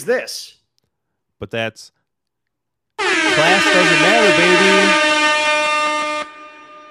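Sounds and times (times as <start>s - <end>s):
speech: 0.0s - 0.6s, 1.4s - 2.0s, 3.0s - 5.1s
loud blaring air horn blast: 3.0s - 6.8s.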